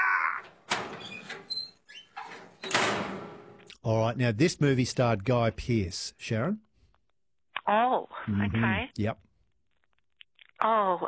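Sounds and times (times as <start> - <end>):
heavy metal door squealing on its hinges and slamming shut: 0.5 - 1.5, 2.2 - 3.6
speech: 3.8 - 6.7, 7.7 - 9.3, 10.6 - 11.0.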